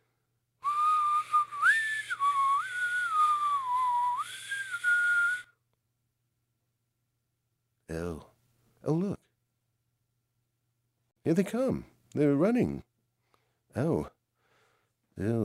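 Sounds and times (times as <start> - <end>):
shrill whistle blast: 0.6 - 5.5
speech: 7.9 - 9.2, 11.3 - 12.9, 13.8 - 14.2, 15.2 - 15.4.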